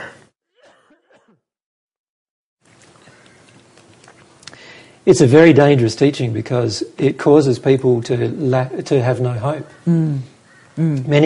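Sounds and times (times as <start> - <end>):
throaty coughs: 0.0 - 1.5
broadband noise: 2.7 - 11.2
speech: 5.0 - 11.2.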